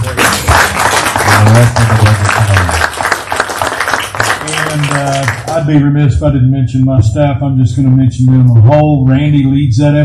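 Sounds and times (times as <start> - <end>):
crowd at a meeting applauding: 0.0 - 5.7
speech: 5.6 - 10.0.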